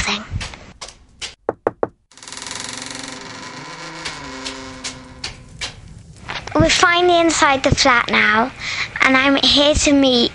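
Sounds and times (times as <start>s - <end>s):
knocking on the door of a flat: 1.4s - 2.0s
droning hum: 2.5s - 8.7s
speech: 6.6s - 10.3s.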